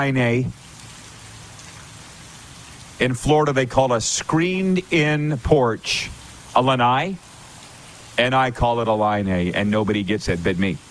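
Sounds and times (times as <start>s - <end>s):
speech: 0.0s - 0.6s, 3.0s - 7.3s, 8.2s - 10.8s
heavy rain drumming on surfaces: 0.0s - 10.8s.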